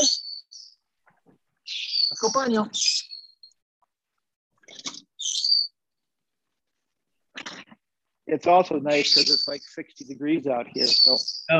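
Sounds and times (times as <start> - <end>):
small pet birds chirping: 0.0 - 3.6, 4.6 - 6.0, 7.3 - 11.5
speech: 2.1 - 3.0, 8.3 - 11.5.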